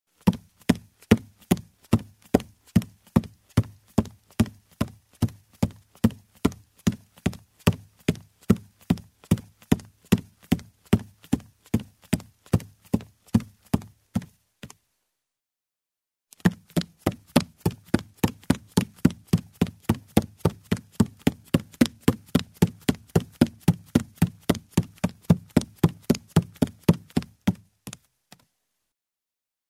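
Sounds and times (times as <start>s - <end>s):
bare feet running on a wooden floor: 0.2s - 14.8s, 16.4s - 28.4s.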